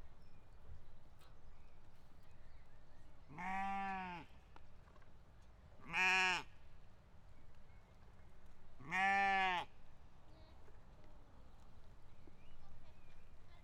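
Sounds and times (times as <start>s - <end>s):
sheep in a pasture giving quavering bleats: 3.4s - 4.2s, 5.9s - 6.5s, 8.8s - 9.6s.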